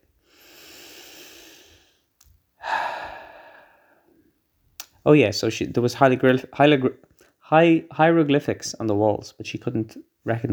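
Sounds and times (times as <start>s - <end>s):
person breathing deeply: 0.1s - 4.3s
speech: 5.0s - 10.5s.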